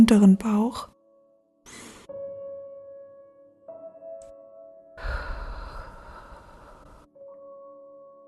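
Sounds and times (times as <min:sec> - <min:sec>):
speech: 0:00.0 - 0:00.9
deep breathing in through nose and out through mouth: 0:01.7 - 0:02.1, 0:05.0 - 0:07.1.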